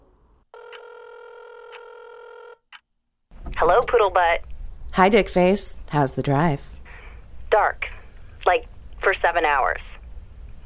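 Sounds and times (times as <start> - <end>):
phone ring tone on speakerphone: 0.6 - 2.6
speech: 3.6 - 6.7, 8.5 - 9.9.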